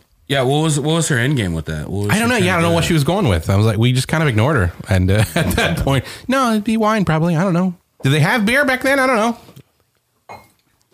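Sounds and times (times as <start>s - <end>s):
speech: 0.3s - 9.4s
glasses clinking in a toast: 10.3s - 10.6s.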